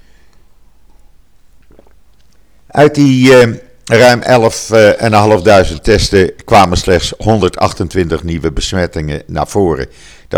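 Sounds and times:
low hum: 0.0 - 10.3
person sipping water: 0.2 - 2.7
slurping and swallowing clicks: 0.3 - 2.6
speech: 2.7 - 10.3.

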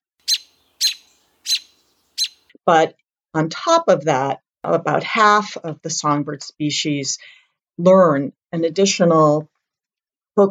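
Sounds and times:
bird alarm calls: 0.2 - 2.5
speech: 2.6 - 9.5.

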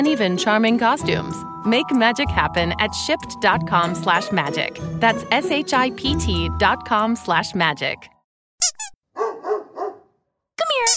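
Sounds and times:
speech: 0.0 - 8.1
dog barking: 9.1 - 10.2.

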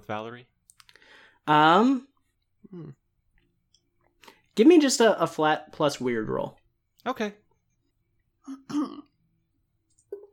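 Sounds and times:
speech: 0.0 - 0.5, 1.4 - 2.1, 2.7 - 3.0, 4.6 - 7.4, 8.5 - 9.1
person clearing throat: 8.4 - 9.1.

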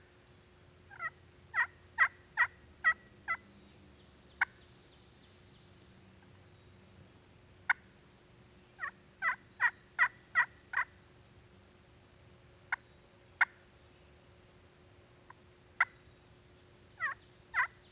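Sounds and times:
sharp high yelps from a pot-and-peg turkey call made by a hunter: 0.9 - 3.4, 8.8 - 10.9, 17.0 - 17.9.

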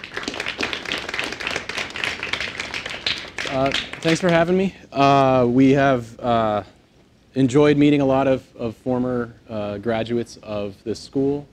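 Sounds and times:
room full of people applauding a speaker: 0.0 - 4.6
speech: 3.5 - 6.8, 7.4 - 11.5.

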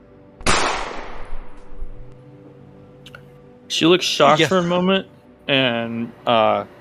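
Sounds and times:
gunshot fired one-handed: 0.4 - 1.9
speech: 3.7 - 6.7.

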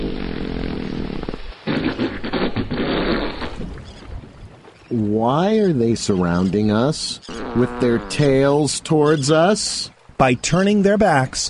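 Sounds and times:
low buzzing fart-like rumble: 0.0 - 3.8, 7.3 - 8.4
water noise: 0.0 - 11.4
wind: 0.0 - 11.4
speech: 4.9 - 11.4.

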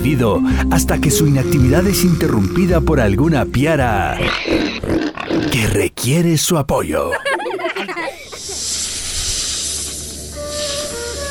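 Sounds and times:
speech: 0.1 - 7.3
snake hissing: 4.2 - 5.5, 8.3 - 11.2
laughter: 6.8 - 8.6.

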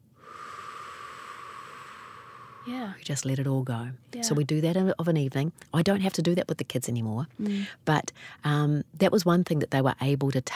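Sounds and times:
deep breath in and out during a guided relaxation: 0.0 - 3.0
speech: 2.6 - 10.5.

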